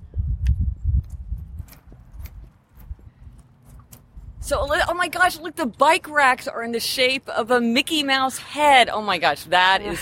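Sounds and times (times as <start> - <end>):
footsteps on hard ground outdoors: 1.0 - 4.8
speech: 4.5 - 10.0.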